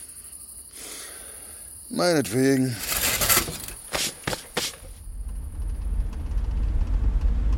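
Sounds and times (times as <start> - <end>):
speech: 1.9 - 2.9
car engine rumbling as the car drives along: 5.0 - 7.5.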